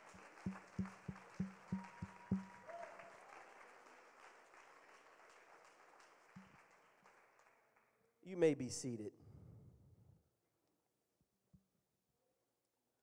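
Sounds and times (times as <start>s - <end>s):
audience applause in a large room: 0.0s - 7.6s
speech: 8.3s - 9.2s.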